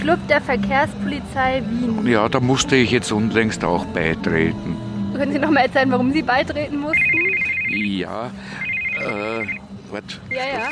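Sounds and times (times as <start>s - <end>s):
speech: 0.0s - 10.7s
telephone with a high electronic ring tone ringing: 6.9s - 9.6s.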